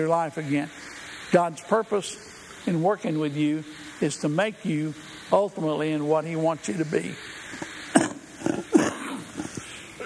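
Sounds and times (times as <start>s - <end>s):
speech: 0.0s - 7.6s
throat clearing: 7.6s - 10.0s.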